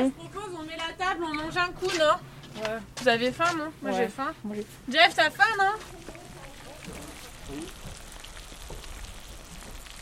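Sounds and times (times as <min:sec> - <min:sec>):
speech: 0:00.0 - 0:00.4, 0:01.0 - 0:06.1, 0:06.9 - 0:07.8
duck sizzling in a hot pan: 0:05.7 - 0:10.0.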